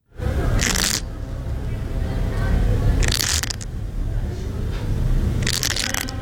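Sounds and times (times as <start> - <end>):
steady low rumble: 0.0 - 6.2
yellow-legged hornet larvae scraping inside paper nest cells: 0.4 - 1.3, 3.0 - 6.2.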